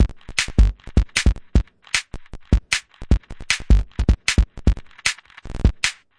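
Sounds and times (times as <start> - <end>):
grainy breakbeat with drum loops and breaks: 0.0 - 6.1.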